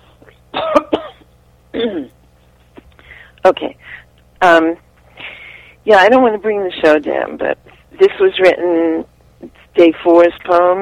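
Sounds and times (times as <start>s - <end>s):
person clearing throat: 0.5s - 2.2s
speech: 3.4s - 4.8s, 5.8s - 10.7s.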